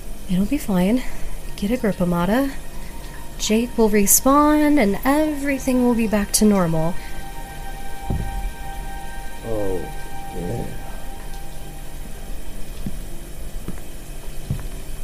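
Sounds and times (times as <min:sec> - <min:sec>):
hot running water hissing: 0:00.0 - 0:15.0
speech: 0:00.3 - 0:02.7, 0:03.4 - 0:07.1
faint knocks: 0:08.1 - 0:08.5, 0:13.7 - 0:14.9
murmured vocal sounds: 0:09.4 - 0:11.0.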